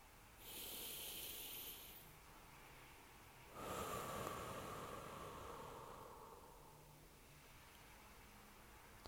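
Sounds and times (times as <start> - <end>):
deep breath drawn in sharply through the nose during a guided breathing exercise: 0.4 - 2.1, 3.5 - 6.9
longer softer exhale through the mouth during a guided breathing exercise: 0.4 - 2.1, 3.5 - 6.9.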